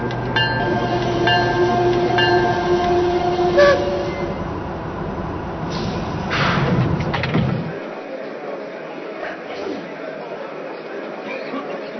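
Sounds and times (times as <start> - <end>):
sustained multi-tone passenger train horn: 0.0 - 4.7
passenger train rumbling at a station: 0.0 - 7.9
train mechanical hiss and clatter: 5.6 - 7.8.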